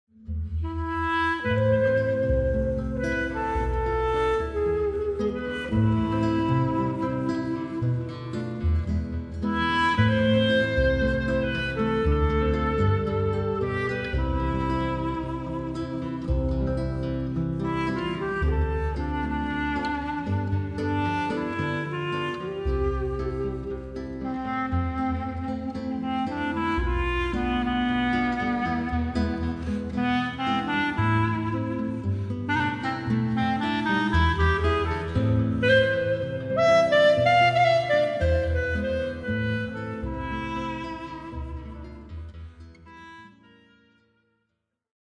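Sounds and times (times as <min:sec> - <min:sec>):
carnival bossa music: 0:00.5 - 0:43.6.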